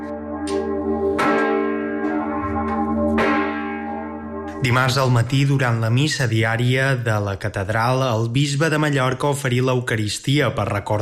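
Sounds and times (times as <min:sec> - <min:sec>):
large church bell tolling: 0:00.0 - 0:07.1
speech: 0:04.6 - 0:11.0.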